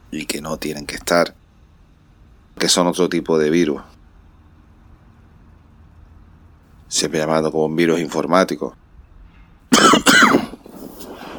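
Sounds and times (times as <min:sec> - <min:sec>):
faint low noise: 0:00.0 - 0:11.3
speech: 0:00.1 - 0:01.4, 0:02.6 - 0:04.0, 0:06.9 - 0:08.8
harsh throaty coughs: 0:09.7 - 0:10.6.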